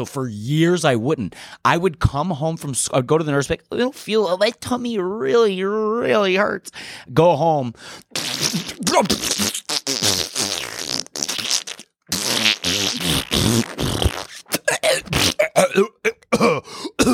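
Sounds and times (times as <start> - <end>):
speech: 0.0 - 10.2, 15.6 - 17.1
voice imitating farting with sputtering raspberry noises: 8.0 - 17.1.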